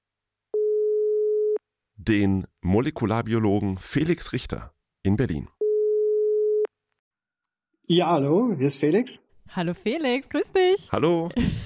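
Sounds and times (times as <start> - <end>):
telephone ringing tone after dialling a call: 0.6 - 1.6, 5.6 - 6.7
speech: 2.1 - 5.6, 7.9 - 11.6.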